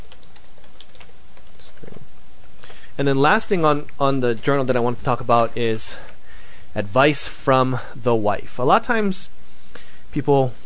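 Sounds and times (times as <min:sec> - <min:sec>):
rapid typing on a computer keyboard: 0:00.0 - 0:02.0
steady hiss: 0:00.0 - 0:10.6
speech: 0:03.0 - 0:06.1, 0:06.8 - 0:09.4, 0:10.1 - 0:10.6.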